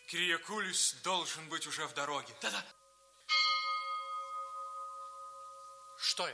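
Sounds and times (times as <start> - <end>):
speech: 0.1 - 2.8, 6.2 - 6.3
deep church bell strike: 3.3 - 6.3.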